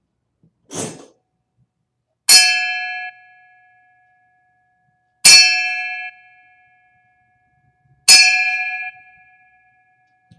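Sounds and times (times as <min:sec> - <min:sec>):
bell strikes as a salute in memory of a deceased uncle: 0:02.3 - 0:03.3, 0:08.1 - 0:09.4.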